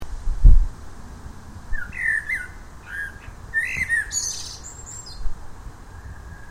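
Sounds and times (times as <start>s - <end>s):
low rumbling background noise: 0.0s - 6.4s
common blackbird Turdus merula giving soft warbled phrases: 1.7s - 5.3s.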